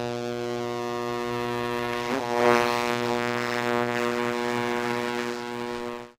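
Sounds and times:
60s cartoon bee buzz: 0:00.2 - 0:06.1.

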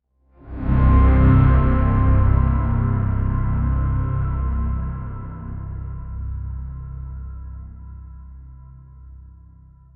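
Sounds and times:
dark dissonant strings: 0:00.4 - 0:08.8.

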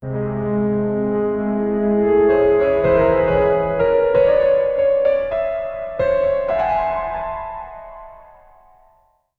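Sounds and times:
sad descending chromatic notes: 0:00.1 - 0:08.7.

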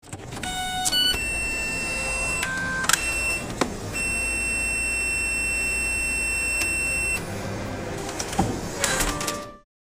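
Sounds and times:
retail cash register: 0:00.1 - 0:07.3, 0:07.9 - 0:09.6
retail barcode scanner beeping: 0:00.4 - 0:07.3.

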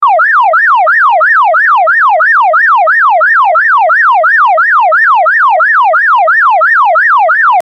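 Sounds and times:
police car sounds: 0:00.0 - 0:07.6.

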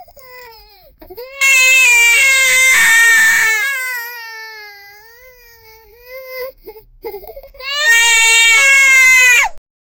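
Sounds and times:
child crying: 0:01.2 - 0:05.5, 0:07.5 - 0:09.6.

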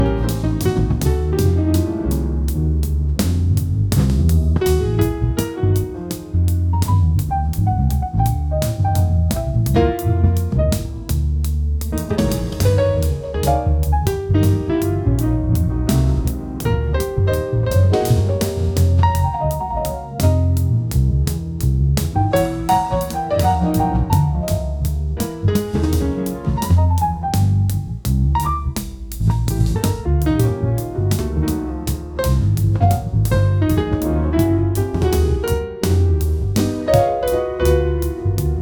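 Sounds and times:
jazz noir night music: 0:00.0 - 0:38.5.

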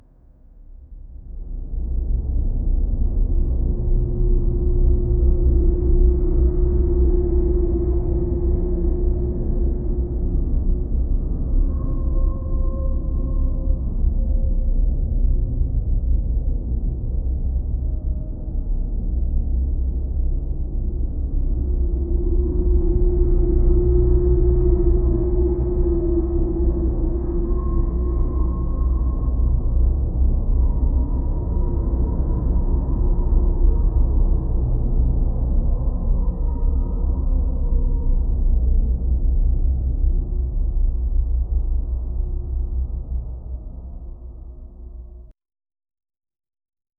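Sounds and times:
dark ambient score: 0:00.9 - 0:45.3.

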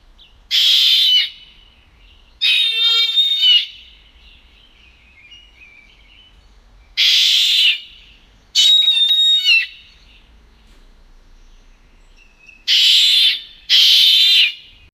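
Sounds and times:
animal cry: 0:00.5 - 0:01.4, 0:02.4 - 0:03.8, 0:07.0 - 0:07.9, 0:12.7 - 0:14.6
bird screaming: 0:00.5 - 0:01.4, 0:02.4 - 0:03.9, 0:07.0 - 0:08.0, 0:08.6 - 0:09.8, 0:12.7 - 0:14.7.

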